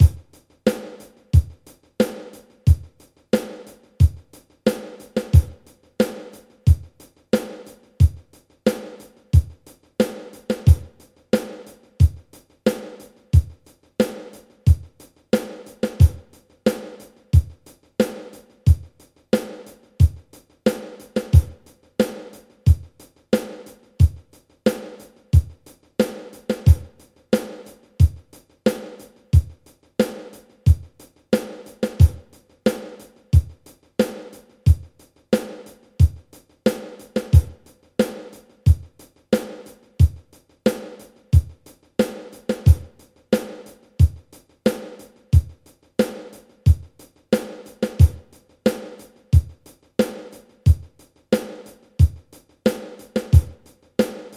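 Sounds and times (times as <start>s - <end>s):
16 beat rhythm at tempo 90: 0.0s - 54.3s.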